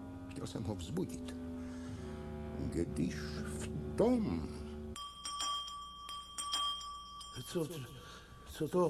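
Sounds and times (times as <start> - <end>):
speech: 0.4 - 1.5, 2.6 - 4.6, 7.4 - 8.8
electric bell ringing: 5.0 - 8.8.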